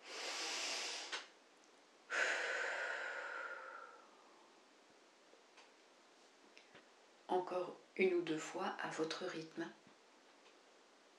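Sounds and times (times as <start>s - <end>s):
person breathing deeply during a guided relaxation exercise: 0.0s - 1.3s, 2.1s - 4.6s
speech: 7.3s - 9.8s.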